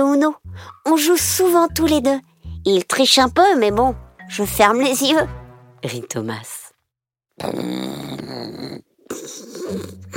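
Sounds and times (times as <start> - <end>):
speech: 0.0 - 6.6, 7.4 - 8.2
wolf snoring: 7.4 - 10.1.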